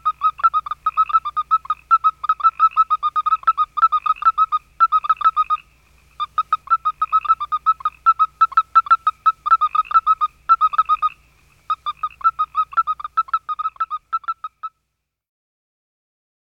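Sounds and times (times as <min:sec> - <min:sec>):
western toad chirping call: 0:00.0 - 0:14.8.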